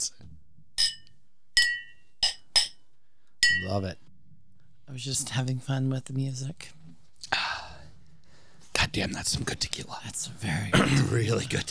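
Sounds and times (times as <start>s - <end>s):
glasses clinking in a toast: 0.8s - 2.8s, 3.4s - 3.8s
speech: 3.6s - 4.0s, 4.9s - 7.4s, 9.0s - 11.6s.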